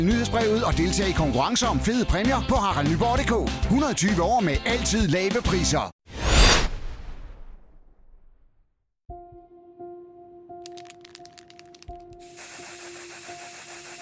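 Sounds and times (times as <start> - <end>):
speech: 0.0 - 6.0
spray paint can hissing: 10.8 - 14.0.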